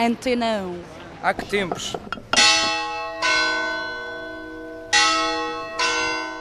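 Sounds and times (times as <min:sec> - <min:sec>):
speech: 0:00.0 - 0:02.3
church bell ringing: 0:02.4 - 0:06.3.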